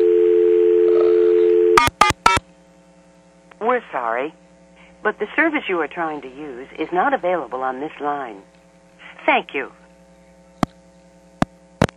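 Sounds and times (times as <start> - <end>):
telephone dial tone: 0.0 - 2.4
speech: 3.9 - 4.4, 5.0 - 8.5, 9.2 - 9.8.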